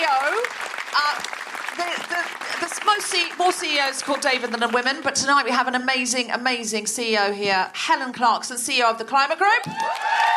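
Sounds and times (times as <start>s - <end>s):
crowd applauding loudly: 0.0s - 5.2s, 9.7s - 10.3s
speech: 3.1s - 10.2s
whoops and cheering voices: 9.6s - 10.3s.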